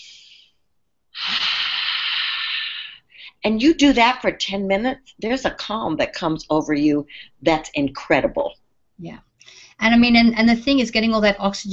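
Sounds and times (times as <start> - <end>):
pranic breathing in through the nose and out through the mouth: 0.0 - 3.4, 9.4 - 9.8
speech: 3.4 - 11.7.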